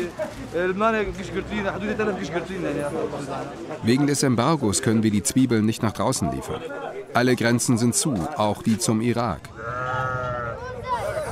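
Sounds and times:
speech: 0:00.0 - 0:10.1
sheep bleating at a traditional livestock market in Qamishli: 0:09.5 - 0:10.7.

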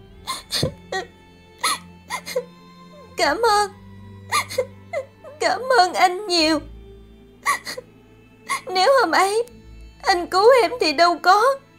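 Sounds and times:
woman sobbing: 0:00.2 - 0:03.7, 0:04.3 - 0:06.6, 0:07.4 - 0:07.9, 0:08.5 - 0:09.1
speech: 0:00.6 - 0:01.1, 0:03.2 - 0:03.8, 0:05.4 - 0:06.7, 0:07.6 - 0:07.9, 0:08.7 - 0:11.6.

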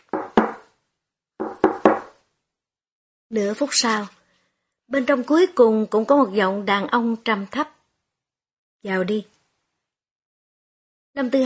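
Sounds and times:
hard knocking on a door: 0:00.0 - 0:00.7, 0:01.4 - 0:02.2
speech: 0:03.3 - 0:04.2, 0:04.9 - 0:07.8, 0:08.8 - 0:09.4, 0:11.2 - 0:11.4.

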